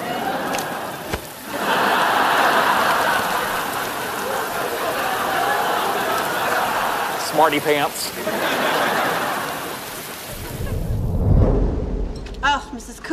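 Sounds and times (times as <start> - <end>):
laughter: 0.0 - 11.0
steady rain: 0.0 - 13.1
sharp tap or splash: 0.5 - 1.4
speech: 7.4 - 8.8.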